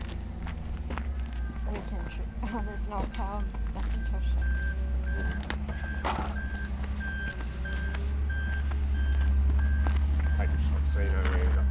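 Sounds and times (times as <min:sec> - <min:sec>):
large truck engine idling: 0:00.0 - 0:11.6
high reversing beeps of a truck: 0:01.4 - 0:10.6
speech: 0:02.1 - 0:06.4
clanks and knocks: 0:05.2 - 0:06.5.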